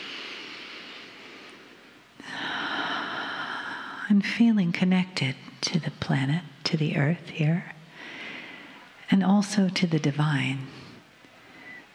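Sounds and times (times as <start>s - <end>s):
deep breath drawn in: 0.0s - 4.0s, 7.9s - 8.9s
speech: 4.1s - 7.7s, 9.1s - 10.8s.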